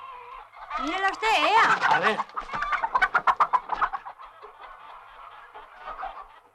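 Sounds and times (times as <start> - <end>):
hen clucking: 0.0 - 6.5
speech: 0.8 - 2.6.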